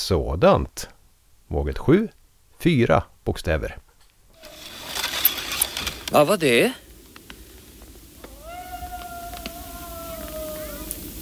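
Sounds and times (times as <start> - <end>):
low hiss: 0.0 - 11.1
speech: 0.1 - 3.8, 6.1 - 6.8
wolf howl: 8.2 - 11.1.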